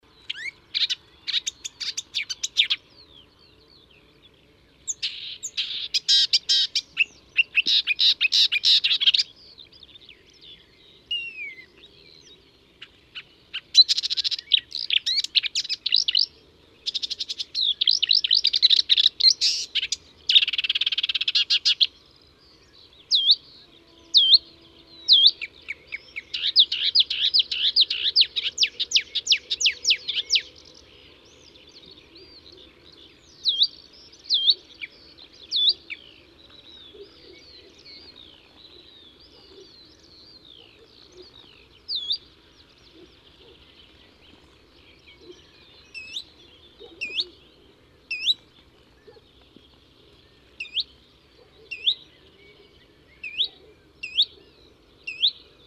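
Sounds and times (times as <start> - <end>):
marsh warbler chirping: 0.0 - 55.6.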